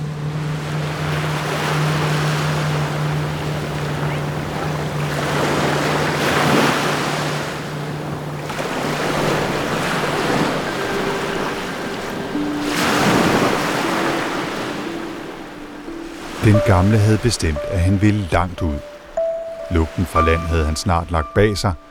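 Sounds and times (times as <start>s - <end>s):
boat engine drone heading toward harbour: 0.0s - 21.8s
water rushing past a boat in open sea: 0.0s - 21.8s
waves breaking against a boat hull: 0.0s - 21.8s
speech: 16.6s - 18.9s, 19.7s - 21.8s.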